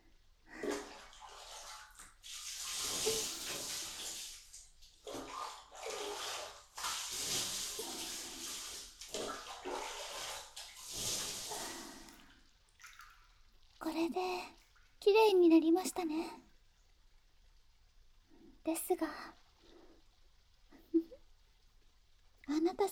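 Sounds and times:
water rinsing something off: 0:01.3 - 0:12.2
speech: 0:14.1 - 0:16.4, 0:18.7 - 0:19.4.

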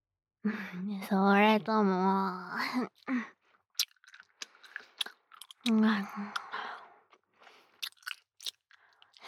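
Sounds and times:
speech: 0:00.4 - 0:03.4, 0:05.6 - 0:06.4
gum being chewed with the mouth close to the microphone: 0:03.7 - 0:09.2.

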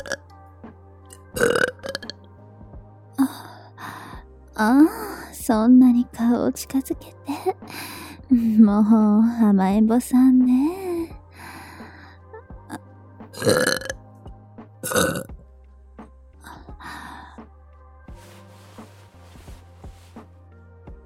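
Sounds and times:
soft breathy burps: 0:00.0 - 0:00.2, 0:01.4 - 0:02.2, 0:13.4 - 0:14.0, 0:14.8 - 0:15.4
long loud belches: 0:01.4 - 0:02.1, 0:13.4 - 0:14.0, 0:14.8 - 0:15.4
speech: 0:04.6 - 0:10.8.

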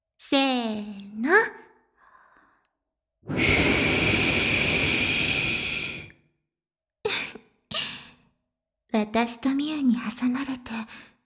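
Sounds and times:
speech: 0:00.3 - 0:01.6, 0:09.2 - 0:11.1
soft breath blown into a wet ear: 0:03.3 - 0:06.2.

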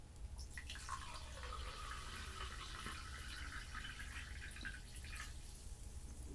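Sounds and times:
homemade sparkling water from a home carbonation device pouring: 0:00.4 - 0:06.2.

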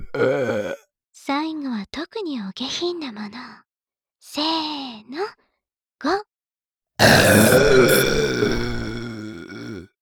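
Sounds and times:
long loud throaty burp: 0:00.0 - 0:00.8, 0:07.0 - 0:10.0
speech: 0:00.2 - 0:00.6, 0:02.6 - 0:03.6, 0:04.3 - 0:05.4.

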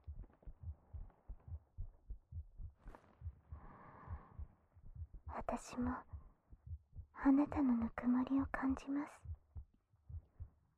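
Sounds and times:
heartbeat: 0:00.0 - 0:10.7
soft breath: 0:02.8 - 0:04.6
speech: 0:05.4 - 0:06.1, 0:07.2 - 0:09.3.

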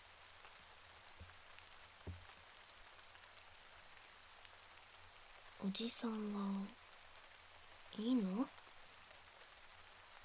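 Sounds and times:
steady rain: 0:00.0 - 0:10.2
heavy drops dripping: 0:01.2 - 0:02.6
speech: 0:05.6 - 0:06.8, 0:08.0 - 0:08.6.

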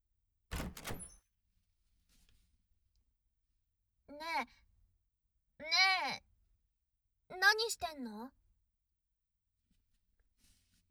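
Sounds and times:
door swinging open with rattle and scrape: 0:00.5 - 0:01.2
speech: 0:04.4 - 0:04.7, 0:07.4 - 0:08.4.

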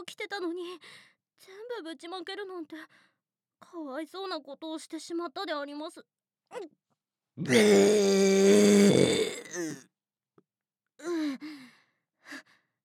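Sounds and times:
speech: 0:00.1 - 0:06.8, 0:07.4 - 0:09.9
long loud croaking burp: 0:07.4 - 0:09.8
short breathy vocal sounds and grunts: 0:07.4 - 0:09.8.

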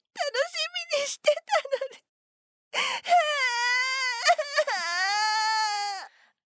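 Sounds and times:
woman crying and wailing: 0:00.2 - 0:02.0, 0:02.8 - 0:06.1.

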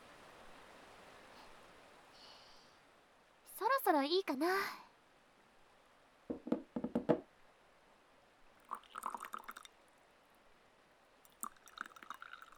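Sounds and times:
speech: 0:03.8 - 0:04.8
tea being poured alternately into cups: 0:08.6 - 0:09.8, 0:11.2 - 0:12.5.

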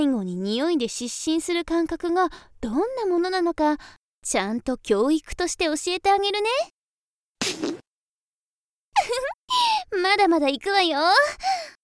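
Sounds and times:
speech: 0:00.0 - 0:06.8, 0:07.4 - 0:07.9, 0:09.0 - 0:11.8
farts: 0:07.4 - 0:07.8.

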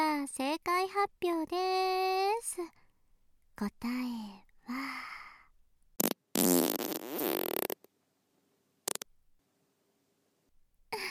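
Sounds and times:
speech: 0:00.2 - 0:02.8, 0:03.6 - 0:05.2
young woman farting under her skirt: 0:06.0 - 0:07.9, 0:08.8 - 0:09.1.

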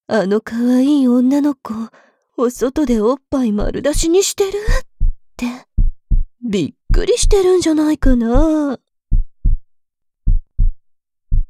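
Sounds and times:
speech: 0:00.1 - 0:05.7, 0:06.4 - 0:08.8
loud heartbeat thumping in lub-dub pairs: 0:03.6 - 0:11.4.

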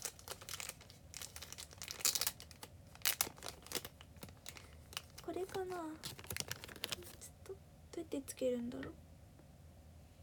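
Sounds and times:
wrapping crinkling as a package is opened: 0:00.0 - 0:07.3
speech: 0:05.4 - 0:06.2, 0:07.5 - 0:09.0.

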